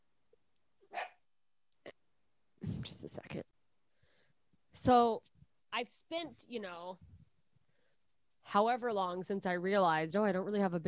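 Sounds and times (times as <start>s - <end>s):
dogs barking: 0.9s - 1.2s
speech: 2.9s - 3.5s, 4.8s - 7.1s, 8.5s - 10.8s.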